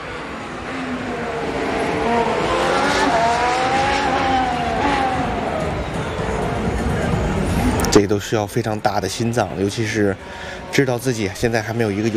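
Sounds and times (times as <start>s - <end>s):
Formula 1 car engine screaming on a qualifying lap: 0.0s - 6.6s
broadcast commentary: 6.0s - 12.1s
speech: 8.0s - 12.1s.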